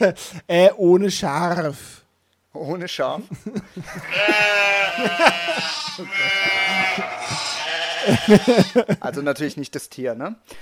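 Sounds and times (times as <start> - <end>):
speech: 0.0 - 2.0, 2.6 - 10.6
laughter: 3.3 - 9.4
sheep bleating: 4.0 - 8.8.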